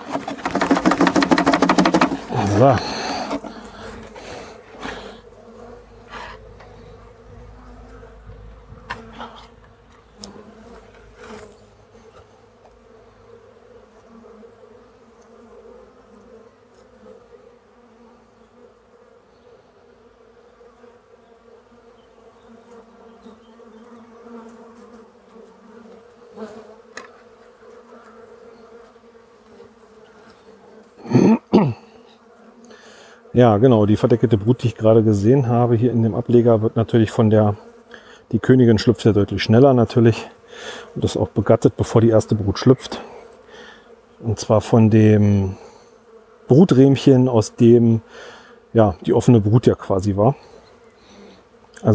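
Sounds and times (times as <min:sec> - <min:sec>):
sharp knocks and thuds: 0:00.0 - 0:04.1
honeybees buzzing after box is tipped: 0:00.0 - 0:51.9
speech: 0:02.6 - 0:02.9, 0:33.4 - 0:37.6, 0:38.3 - 0:40.3, 0:41.0 - 0:43.0, 0:44.2 - 0:45.6, 0:46.5 - 0:50.5, 0:51.8 - 0:51.9.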